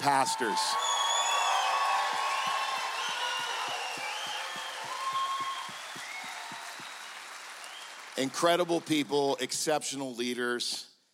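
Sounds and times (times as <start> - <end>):
speech: 0.0 - 1.0, 8.2 - 10.9
large indoor crowd cheering and hollering: 0.0 - 8.2
crowd clapping: 0.0 - 9.5
sharp whistles from a crowd: 0.7 - 8.0.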